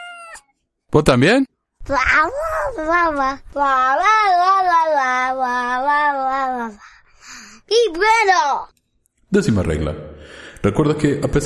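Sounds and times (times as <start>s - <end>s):
cat meowing and yowling: 0.0s - 0.4s
speech: 0.9s - 6.9s, 7.7s - 8.7s, 9.3s - 11.4s.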